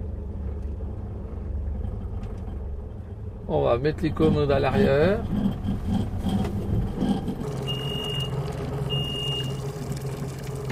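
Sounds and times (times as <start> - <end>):
boat outboard engine running: 0.0 - 10.6
speech: 3.5 - 6.6
short high electronic beeps: 7.6 - 8.3, 8.9 - 9.6.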